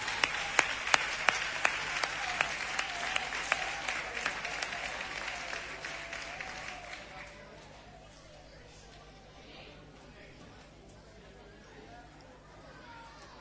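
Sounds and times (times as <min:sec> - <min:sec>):
audience applause: 0:00.0 - 0:07.8.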